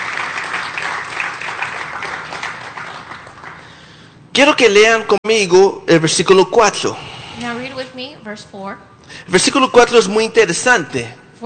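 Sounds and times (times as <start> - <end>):
audience applause: 0.0 - 4.0
speech: 4.4 - 11.4.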